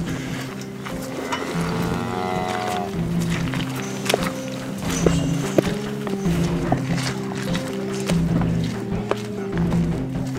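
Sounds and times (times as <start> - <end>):
leather boots squelching through liquid cow manure: 0.0 - 10.3
mooing-like call: 1.0 - 3.2.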